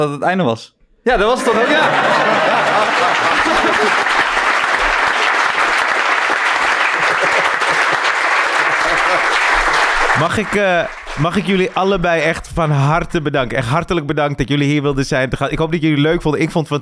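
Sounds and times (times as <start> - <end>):
speech: 0.0 - 4.1, 10.2 - 16.8
live show audience applauding: 1.2 - 12.4
faint scattered laughter: 1.4 - 4.9, 6.8 - 9.4.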